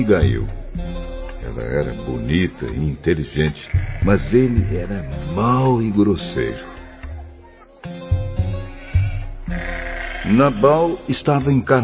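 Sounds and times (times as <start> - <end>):
speech: 0.0 - 6.7, 10.3 - 11.8
sheep and goats bleating: 3.3 - 5.8, 8.4 - 11.7.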